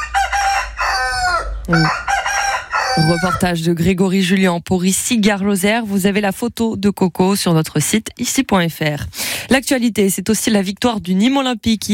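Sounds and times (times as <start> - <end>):
rooster crowing in a countryside village: 0.0 - 3.5
speech: 1.7 - 2.0, 3.0 - 11.9.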